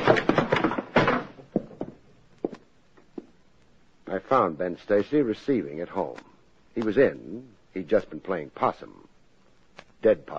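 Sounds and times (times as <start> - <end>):
apartment door rattling and banging as it is forced open: 0.0 - 1.9
speech: 4.3 - 9.0, 10.0 - 10.3.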